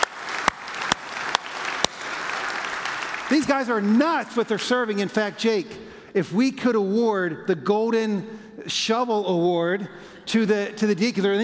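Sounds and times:
sharp loud claps: 0.0 - 5.1
audience applauding: 0.0 - 5.2
speech: 3.3 - 11.4.

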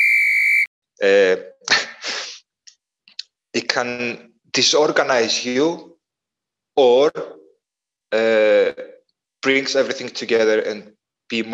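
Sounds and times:
high-pitched censorship bleep: 0.0 - 0.7
speech: 1.0 - 1.5, 3.8 - 5.9, 6.8 - 7.4, 8.1 - 11.5.

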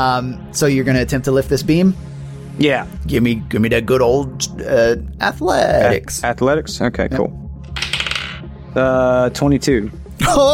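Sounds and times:
speech: 0.0 - 7.4, 8.7 - 10.5
dice rolling across a hard table: 7.8 - 8.4.

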